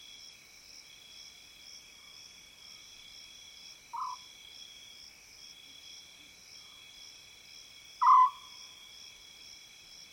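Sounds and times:
African scops owl single short call in savanna woodland: 8.0 - 8.4.

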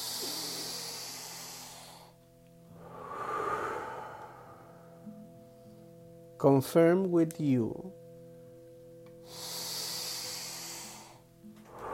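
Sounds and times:
slow deep breathing during a guided meditation: 0.0 - 6.1, 9.2 - 11.9
speech: 6.4 - 8.0.

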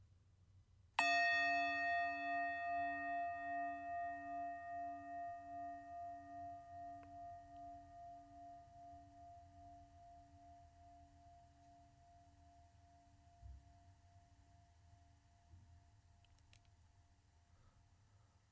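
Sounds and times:
meditation bell struck and resonating: 1.0 - 13.4.

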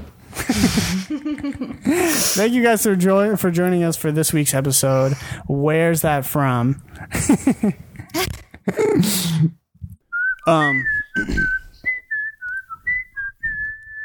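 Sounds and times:
speech: 0.6 - 9.6, 10.4 - 11.4
person whistling a short melody: 10.1 - 14.0.

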